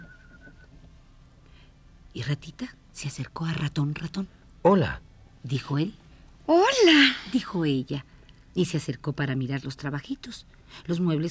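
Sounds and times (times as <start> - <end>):
short thin whistled melody: 0.0 - 0.8
low steady rumble: 0.0 - 11.2
speech: 2.1 - 11.2.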